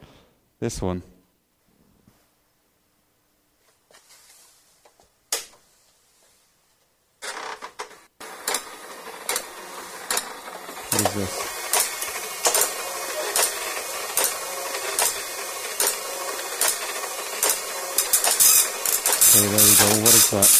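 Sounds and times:
speech: 0.6 - 1.1, 20.3 - 20.5
dot matrix printer printing: 7.2 - 20.5.

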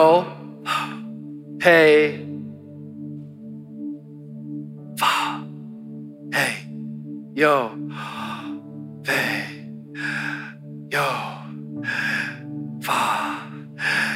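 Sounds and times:
speech: 0.0 - 0.4, 1.6 - 2.3, 7.4 - 8.2, 9.0 - 10.2
slow deliberate breathing: 0.4 - 1.4, 7.8 - 14.1.

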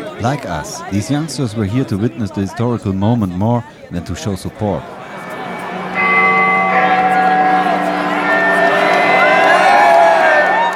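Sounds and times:
large outdoor crowd murmuring and cheering: 0.0 - 10.7
speech: 0.2 - 5.0
electronic recording of deep ringing bell chimes: 4.8 - 10.7.

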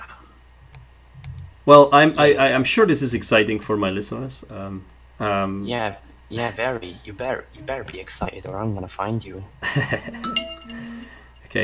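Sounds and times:
speech: 1.6 - 10.9
man laughing: 9.6 - 10.2
brief electronic message notification chime: 10.1 - 11.3.

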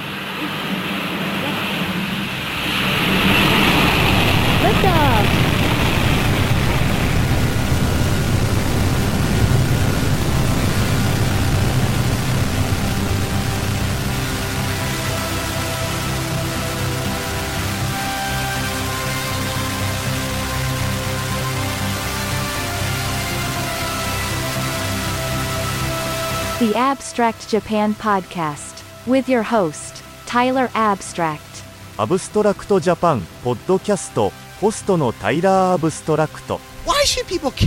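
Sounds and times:
rocket main engine ignition roar: 0.0 - 28.6
speech: 27.2 - 37.6.

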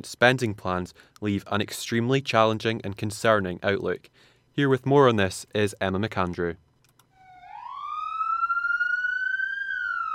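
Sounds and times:
speech: 0.0 - 6.6
police car siren: 7.2 - 10.1.

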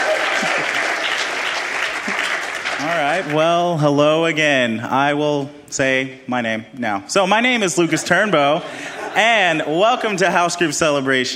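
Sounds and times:
laughter: 0.0 - 1.1, 7.4 - 11.1
room full of people applauding: 0.0 - 3.7
speech: 2.8 - 11.3.

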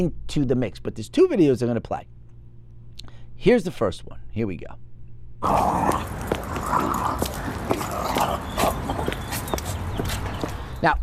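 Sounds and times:
speech: 0.0 - 2.2, 3.4 - 4.8, 5.4 - 7.2, 10.8 - 11.0
two dogs scuffling and fighting: 5.4 - 10.7.

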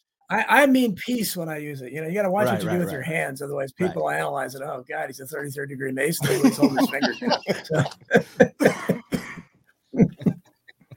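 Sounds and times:
speech: 0.3 - 8.8
laughter: 6.2 - 9.1, 10.0 - 10.4
congested coughs: 6.2 - 10.4.

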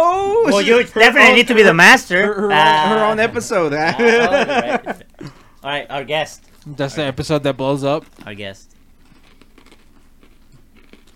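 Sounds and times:
speech: 0.5 - 8.7
laughter: 2.2 - 5.4
crunchy chewing of cookies: 7.3 - 11.1.

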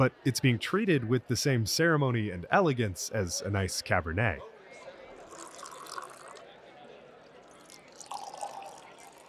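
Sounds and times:
speech: 0.0 - 4.5
soft murmur of voices: 0.0 - 9.2
tap water poured from heavy bottles into stemmed glasses: 5.2 - 6.4, 7.5 - 9.2.

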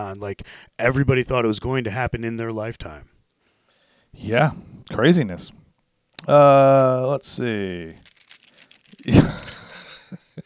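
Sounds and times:
speech: 0.0 - 3.2, 4.1 - 5.6, 6.2 - 8.1, 9.0 - 9.6
keys shaken against the microphone: 8.0 - 9.8.

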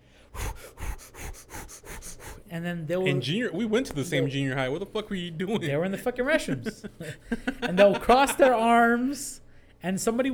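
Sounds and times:
person imitating rapid heavy breathing: 0.0 - 2.5
speech: 2.5 - 10.3
laughter: 5.5 - 8.9.

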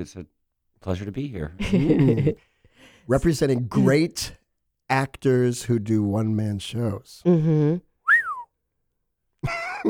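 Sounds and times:
speech: 0.0 - 7.9, 9.4 - 9.8
person whistling: 8.0 - 8.6.

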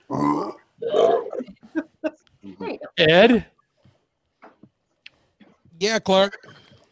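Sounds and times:
loud drawn-out belch: 0.1 - 1.5
speech: 3.0 - 3.5, 5.8 - 6.4.

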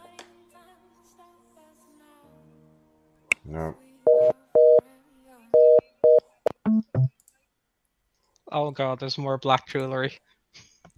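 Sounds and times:
speech: 3.5 - 3.9, 8.5 - 10.3
telephone line busy signal beeps: 4.1 - 4.8, 5.6 - 6.8
shorter lower electronic telephone tones: 5.6 - 7.1.

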